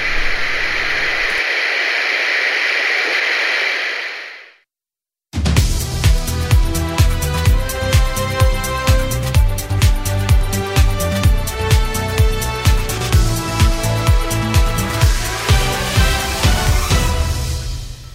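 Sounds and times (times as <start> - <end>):
radio static: 0.0 - 4.6
rhythmic music: 5.6 - 17.4.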